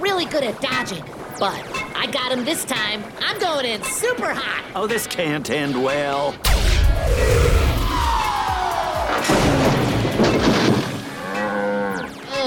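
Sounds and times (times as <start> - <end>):
speech: 0.2 - 7.6
runaway train crashing through a fence: 6.4 - 8.3, 9.0 - 11.1
debris clattering: 9.1 - 11.1
cow mooing: 11.1 - 12.1.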